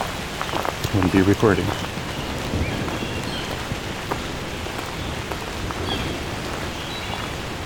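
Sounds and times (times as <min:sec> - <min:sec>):
rain falling through leafy forest canopy: 0:00.0 - 0:07.6
speech: 0:00.9 - 0:01.9
faint bird calls: 0:01.8 - 0:07.6.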